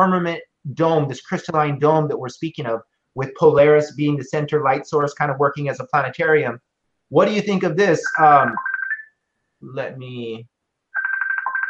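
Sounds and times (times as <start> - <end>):
speech: 0.0 - 8.7, 9.6 - 10.5
phone ringing with an electronic warbling ringtone: 8.1 - 9.1, 11.0 - 11.6.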